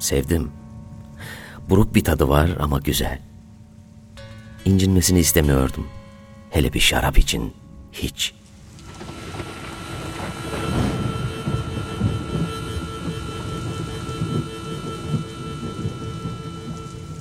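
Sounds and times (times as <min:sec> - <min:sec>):
speech: 0:00.0 - 0:00.6, 0:01.3 - 0:03.3, 0:04.6 - 0:08.4
heavy rain pelting a window: 0:08.7 - 0:17.1.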